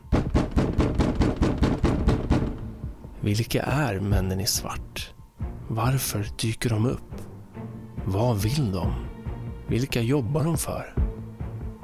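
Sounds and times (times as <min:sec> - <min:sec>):
heavy knocks on a door early in the morning: 0:00.0 - 0:03.1
speech: 0:03.2 - 0:07.3, 0:08.1 - 0:09.1, 0:09.7 - 0:11.0.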